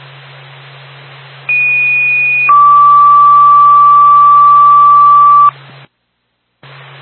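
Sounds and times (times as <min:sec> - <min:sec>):
fire dispatch radio paging alert tones: 0:01.5 - 0:05.5.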